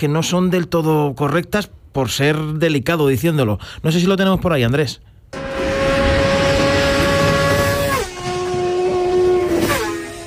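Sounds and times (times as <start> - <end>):
speech: 0.0 - 5.1
two large-displacement motorcycles racing on a two-way road: 5.4 - 10.2.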